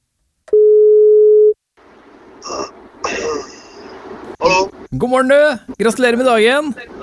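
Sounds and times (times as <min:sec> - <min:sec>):
telephone ringing tone of a radio wake-up call: 0:00.5 - 0:01.6
speech: 0:04.9 - 0:06.9.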